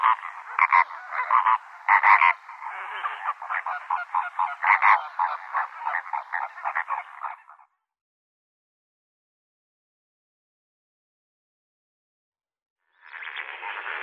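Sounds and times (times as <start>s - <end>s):
Lesser flamingo flock chatter with nasal honking notes: 0.0s - 7.6s.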